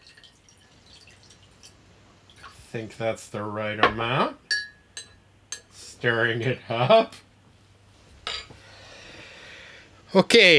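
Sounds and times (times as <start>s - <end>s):
water dripping over sugar cube on absinthe spoon: 0.0s - 2.6s
faint hiss: 0.0s - 10.5s
speech: 2.7s - 4.4s, 6.0s - 7.2s, 10.1s - 10.5s.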